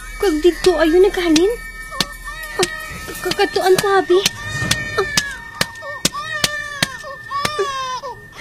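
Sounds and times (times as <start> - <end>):
speech: 0.2 - 1.7, 2.6 - 4.4, 5.0 - 5.2
sharp clicking knocks: 1.4 - 7.6
child crying in high wavering wails: 1.9 - 8.3.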